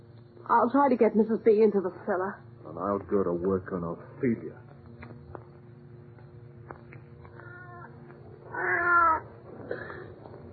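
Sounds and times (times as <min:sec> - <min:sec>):
speech: 0:00.5 - 0:04.7
cat meowing: 0:07.4 - 0:07.9, 0:08.5 - 0:09.3.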